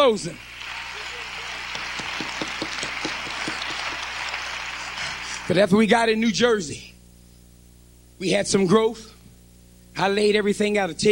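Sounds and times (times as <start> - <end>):
speech: 0.0 - 0.5, 5.5 - 6.9, 8.2 - 9.1, 10.0 - 11.1
audience clapping hands in a steady even rhythm: 0.1 - 5.7
crowd noise in a large room: 0.4 - 5.6.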